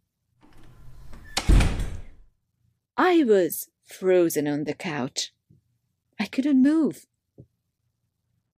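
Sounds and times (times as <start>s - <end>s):
door swinging shut with a solid thud: 0.4s - 2.3s
speech: 3.1s - 5.4s, 6.2s - 7.5s.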